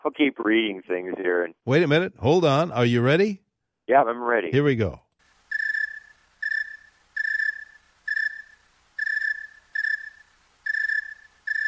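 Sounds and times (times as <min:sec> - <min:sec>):
speech: 0:00.0 - 0:05.0
cricket chirping slowly on a cool night: 0:05.4 - 0:11.6.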